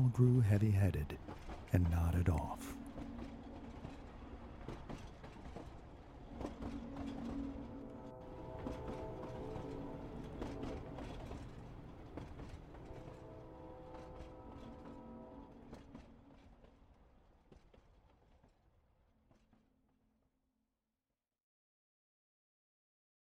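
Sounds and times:
train rumbling along rails: 0.0 - 19.6
speech: 0.1 - 2.8
train wheels clacking over track joints: 1.0 - 16.8.

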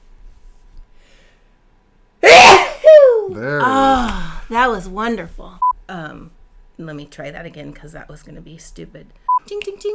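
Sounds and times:
person sneezing: 2.2 - 4.2
speech: 3.4 - 3.6, 4.6 - 9.9.

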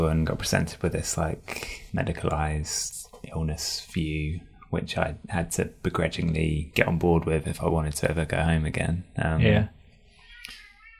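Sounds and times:
speech: 0.1 - 9.8
cat meowing: 10.2 - 10.9.

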